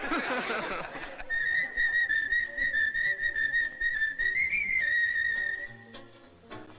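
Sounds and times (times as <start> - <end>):
laughter: 0.0 - 2.7
person whistling a tune: 1.3 - 6.0.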